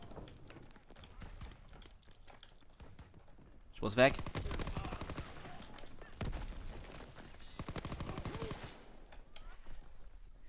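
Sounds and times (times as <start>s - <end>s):
gunfire from weapons in a video game shooter: 2.8s - 9.0s
speech: 3.8s - 4.5s.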